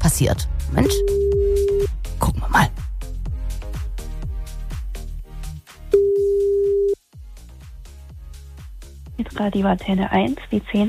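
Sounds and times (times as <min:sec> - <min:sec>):
speech: 0:00.0 - 0:01.4, 0:02.5 - 0:02.8, 0:09.4 - 0:10.8
thumping music bed with a steady beat: 0:00.5 - 0:10.8
electronic telephone ringing tone: 0:06.0 - 0:07.0.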